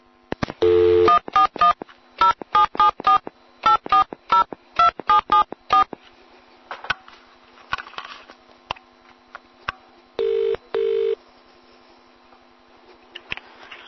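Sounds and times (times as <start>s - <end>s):
phone keypad tones of a number being dialed: 0.6s - 5.9s
quiet phone line noise: 0.6s - 6.0s, 10.2s - 11.2s.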